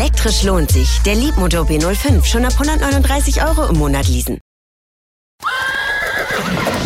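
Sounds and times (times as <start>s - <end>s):
speech: 0.1s - 4.5s
horse neighing: 5.4s - 6.7s.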